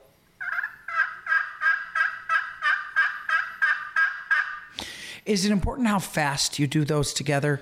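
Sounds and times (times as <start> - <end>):
slate call imitating a turkey yelp: 0.4 - 4.8
speech: 5.3 - 7.5.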